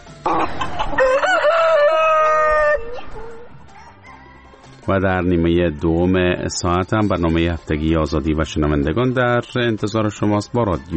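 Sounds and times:
rooster crowing: 0.3s - 4.4s
speech: 4.9s - 10.9s.

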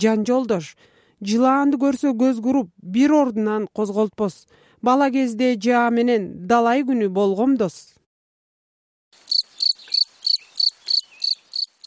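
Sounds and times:
speech: 0.0s - 7.9s
grasshopper chirping: 9.2s - 11.8s.

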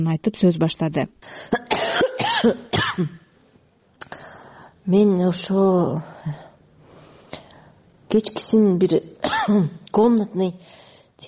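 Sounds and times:
speech: 0.0s - 1.6s, 2.4s - 3.2s, 4.8s - 6.4s, 8.1s - 11.2s
woman recovering from an illness coughing hard: 1.5s - 3.3s, 9.2s - 9.8s.

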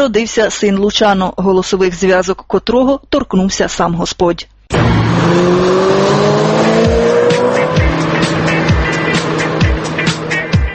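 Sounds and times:
speech: 0.0s - 7.1s
sports car engine revving and roaring past: 4.7s - 10.6s.

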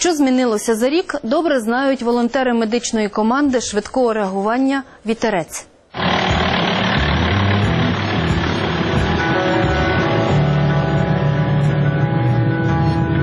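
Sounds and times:
speech: 0.0s - 6.2s
vehicle engine driving along a dangerous road toward a dam: 6.0s - 13.2s.

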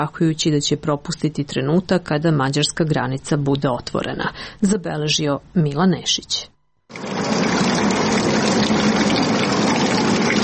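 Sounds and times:
speech: 0.0s - 7.1s
water running from a public drinking fountain in a park: 6.9s - 10.4s.

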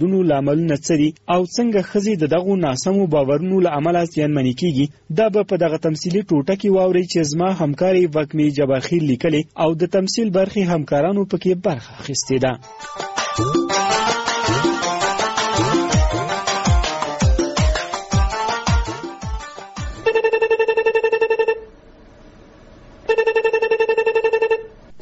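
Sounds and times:
speech: 0.0s - 14.2s
electronic telephone ringtone of steady stacked tones: 12.6s - 17.8s, 18.7s - 21.7s, 23.1s - 24.7s.

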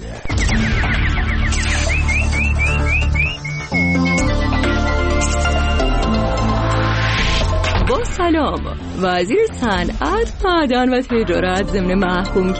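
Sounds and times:
quick rising bird-like chirps: 0.3s - 5.8s
sustained high whistling tones: 0.3s - 6.5s
loud dense music: 0.3s - 12.5s
speech: 8.2s - 12.5s.

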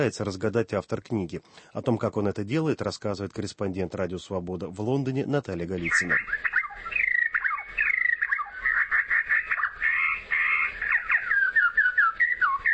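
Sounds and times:
speech: 0.0s - 6.9s
fast-warbling birdsong with whistles, trills and chirps: 5.8s - 12.7s.

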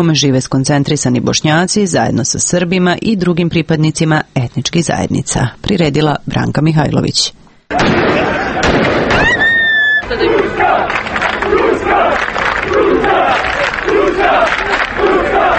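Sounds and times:
speech: 0.0s - 8.3s
sharp bangs: 7.7s - 13.3s
shrill whistling tones: 9.2s - 10.4s
large crowd chanting celebratory slogans after a basketball win: 10.0s - 15.5s.

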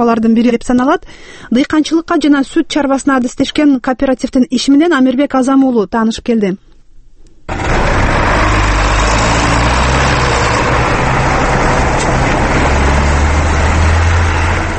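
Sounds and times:
speech: 0.0s - 6.7s, 7.5s - 7.8s
John Deere wheeled tractor engine pulling a plough across a fallow field: 7.5s - 14.7s.

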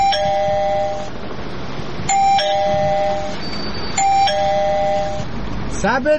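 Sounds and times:
battery-powered doorbell at a front door chiming: 0.0s - 1.2s, 2.1s - 5.3s.

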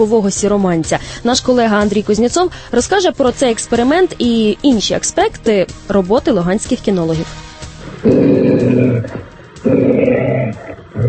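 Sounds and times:
speech: 0.0s - 7.4s, 8.0s - 8.3s, 9.0s - 11.0s
steppe wolf at a police dog-handling centre in Luhansk growling: 7.8s - 11.0s.

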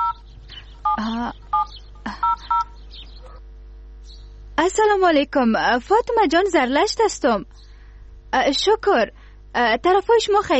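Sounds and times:
telephone keypad dialing beeps: 0.0s - 0.2s, 0.9s - 2.8s
steady low hum: 0.0s - 10.5s
speech: 4.6s - 7.7s, 8.3s - 10.5s.

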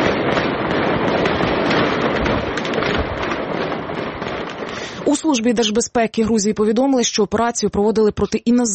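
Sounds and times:
dense gunfire at an apartment building: 0.0s - 5.1s
hand grenade explosions: 0.0s - 5.8s
speech: 5.3s - 8.7s.

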